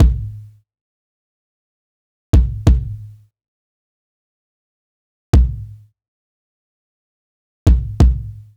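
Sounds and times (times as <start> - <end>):
jazz kick drum: 0.0 - 0.4, 2.4 - 3.1, 5.4 - 5.8, 7.7 - 8.5.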